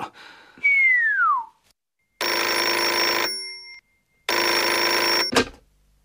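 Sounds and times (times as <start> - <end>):
telephone bell ringing: 2.2 - 5.3.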